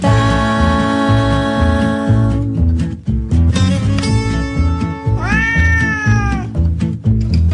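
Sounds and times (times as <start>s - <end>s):
bouncy rhythmic music with a steady beat: 0.0s - 7.5s
cat meowing: 5.0s - 6.6s.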